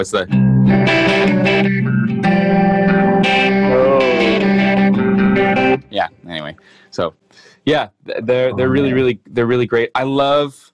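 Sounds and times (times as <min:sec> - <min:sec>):
speech: 0:00.0 - 0:02.6, 0:07.0 - 0:10.7
electric guitar chords with tri-chorus effect and reverb: 0:00.3 - 0:05.9, 0:08.5 - 0:09.1.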